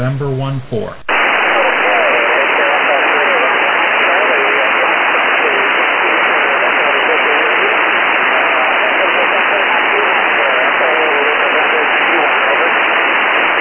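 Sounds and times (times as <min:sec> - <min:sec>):
speech: 0:00.0 - 0:01.1
faint voice of amateur radio operator replying via satellite: 0:00.0 - 0:13.4.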